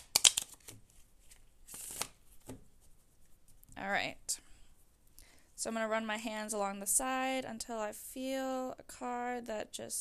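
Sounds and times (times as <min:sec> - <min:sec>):
shuffling a deck of tarot cards: 0:00.0 - 0:03.6
speech: 0:05.6 - 0:09.9.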